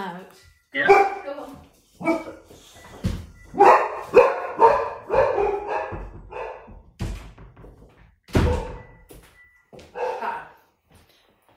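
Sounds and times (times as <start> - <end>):
dogs barking and yipping: 0.8 - 1.3, 2.0 - 2.6, 3.4 - 6.9, 9.9 - 10.5.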